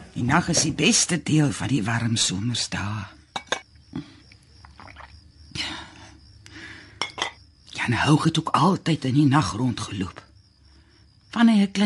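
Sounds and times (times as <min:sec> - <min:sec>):
speech: 0:00.2 - 0:03.2, 0:07.9 - 0:10.3, 0:11.4 - 0:11.8
cup and spoon clinking: 0:03.3 - 0:03.7, 0:07.0 - 0:07.4
boiled water from a thermos flask poured over a teabag: 0:04.6 - 0:05.2.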